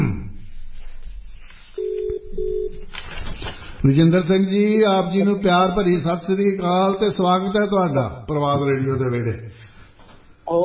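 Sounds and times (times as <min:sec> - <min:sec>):
faint noise: 0:00.0 - 0:10.6
low-pitched telephone ringback tone as a call is placed: 0:01.8 - 0:02.8
speech: 0:03.8 - 0:09.5, 0:10.5 - 0:10.6.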